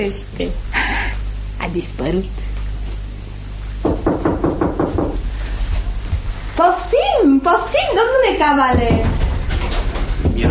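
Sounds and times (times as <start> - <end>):
speech: 0.0 - 0.7, 1.6 - 2.5, 6.6 - 9.2
faint hum: 0.0 - 10.4
firm knocking on a door: 3.8 - 5.2, 8.6 - 10.4.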